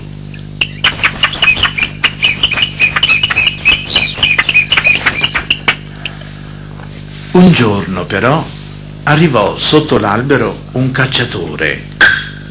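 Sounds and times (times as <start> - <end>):
brightly feathered birds chirping and tweeting: 0.6 - 6.2
speech: 7.4 - 11.9.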